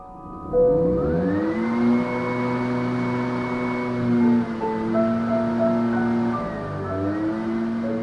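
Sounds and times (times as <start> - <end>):
old gas-powered leaf blower engine running: 0.2 - 8.0.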